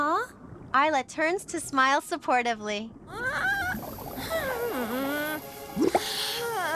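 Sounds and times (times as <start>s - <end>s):
speech: 0.7s - 3.5s
soft warbling tonal music: 2.9s - 6.7s
small bubbles popping underwater: 3.6s - 4.6s, 5.8s - 6.2s.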